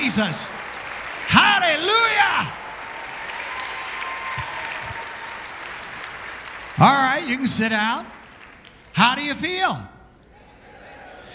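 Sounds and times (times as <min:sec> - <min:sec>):
audience applause: 0:00.0 - 0:08.9
speech: 0:00.2 - 0:00.7, 0:01.3 - 0:02.6, 0:06.8 - 0:08.2, 0:09.0 - 0:09.9
faint crowd murmur: 0:10.3 - 0:11.3.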